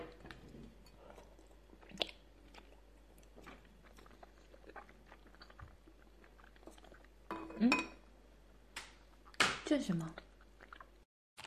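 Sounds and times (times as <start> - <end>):
person chewing food during a meal: 0.2 - 7.2, 10.2 - 11.0
dishes and cutlery clinking: 7.3 - 8.0
speech: 9.7 - 10.2.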